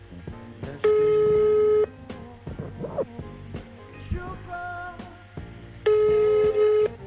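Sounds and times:
ringback tone of an outgoing telephone call: 0:00.9 - 0:01.9, 0:05.9 - 0:07.0.

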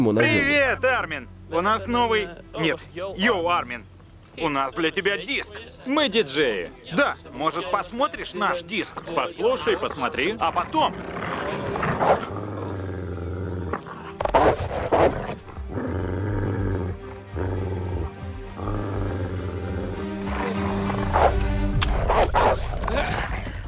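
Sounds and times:
speech: 0:00.0 - 0:11.4
dogs barking and growling while chasing: 0:09.5 - 0:23.6.

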